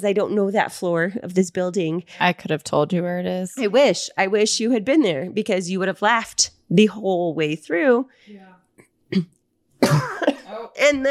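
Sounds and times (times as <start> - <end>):
speech: 0.0 - 8.5, 9.1 - 11.0
harsh coughs: 9.1 - 10.7
throat clearing: 9.1 - 10.7.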